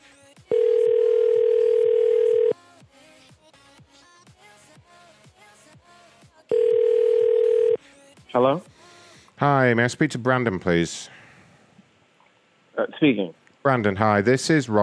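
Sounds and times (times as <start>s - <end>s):
ringback tone on an outgoing telephone call: 0.5s - 2.6s, 6.5s - 7.8s
speech: 8.4s - 8.7s, 9.4s - 11.2s, 13.0s - 14.8s.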